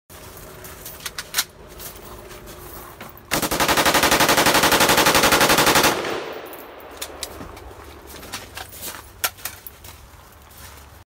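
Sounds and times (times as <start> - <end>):
Steyr AUG rifle: 3.3 - 7.3.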